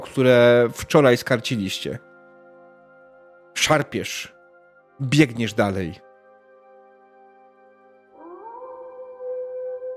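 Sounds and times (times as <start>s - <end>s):
speech: 0.0s - 2.1s, 3.6s - 4.4s, 5.0s - 6.0s
wolf howling: 8.1s - 9.9s.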